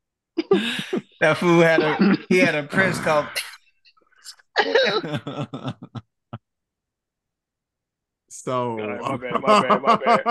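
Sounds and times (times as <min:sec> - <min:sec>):
laughter: 0:00.4 - 0:03.3, 0:04.6 - 0:06.4, 0:08.8 - 0:10.2
speech: 0:00.5 - 0:03.5, 0:04.6 - 0:06.0, 0:08.4 - 0:10.2
strange strained croaking cough: 0:01.8 - 0:03.6.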